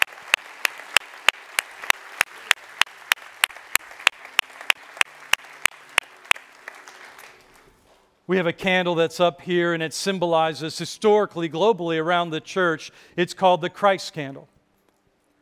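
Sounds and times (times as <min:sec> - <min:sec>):
crowd applauding in a large room: 0:00.0 - 0:07.7
speech: 0:08.3 - 0:14.5.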